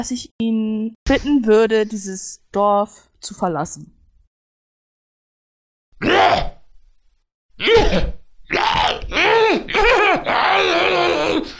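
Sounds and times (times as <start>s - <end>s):
speech: 0.0s - 4.0s, 7.6s - 8.7s
voice imitating a loud shrieking cackle of uncontrollable laughing: 8.5s - 11.4s.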